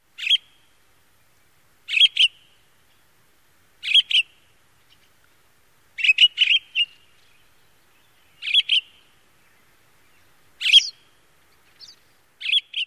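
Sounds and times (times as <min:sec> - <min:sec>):
pine grosbeak calling: 0:00.2 - 0:00.7, 0:01.9 - 0:03.0, 0:03.8 - 0:05.2, 0:06.0 - 0:12.8.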